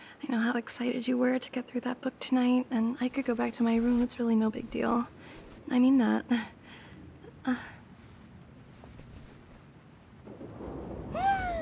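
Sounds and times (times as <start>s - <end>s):
speech: 0.2s - 6.6s, 7.4s - 7.8s
thunder rumbling: 4.4s - 11.6s.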